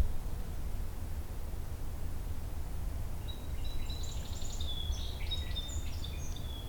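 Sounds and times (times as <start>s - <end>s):
steady low background noise: 0.0s - 6.6s
Song Sparrow song in Beverly Swamp: 3.2s - 6.6s.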